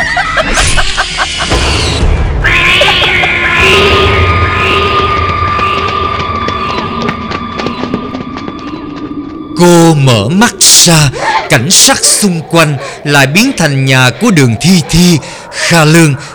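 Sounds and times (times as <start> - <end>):
laughter: 0.0 - 1.8
dense loud rumbling background: 1.4 - 11.2
cat screeching: 1.7 - 4.6
speech: 9.6 - 16.3.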